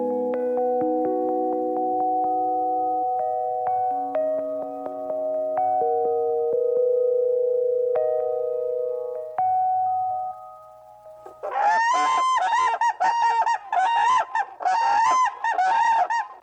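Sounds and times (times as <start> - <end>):
sustained musical tones: 0.0 - 11.8
whooping crane giving loud harsh resonant trumpeting calls: 11.2 - 16.4.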